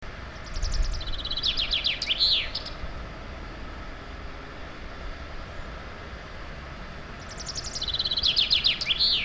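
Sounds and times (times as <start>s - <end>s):
constant low traffic rumble: 0.0s - 9.2s
native woodland songbird singing high rapid trilled song: 0.3s - 2.8s, 7.2s - 9.2s.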